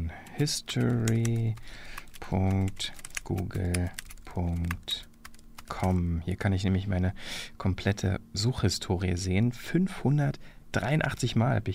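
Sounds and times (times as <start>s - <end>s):
typing on a work computer keyboard in an office: 0.2s - 5.9s
speech: 0.4s - 5.1s, 5.7s - 11.7s.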